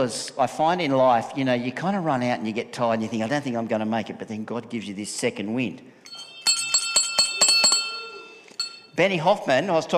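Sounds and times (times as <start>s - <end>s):
speech: 0.0s - 6.0s, 9.0s - 9.9s
bell rung rapidly with bright metallic clanging: 6.0s - 9.0s.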